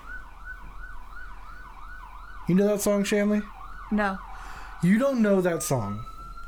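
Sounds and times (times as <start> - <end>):
ambulance siren wailing: 0.0 - 6.4
speech: 2.5 - 6.1.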